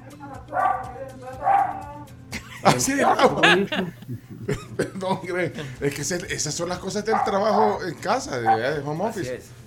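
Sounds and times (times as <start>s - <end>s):
dog barking at doorbell: 0.5s - 2.0s, 2.9s - 3.5s, 7.0s - 7.8s, 8.4s - 8.8s
laughter: 2.3s - 6.2s
speech: 2.6s - 9.6s.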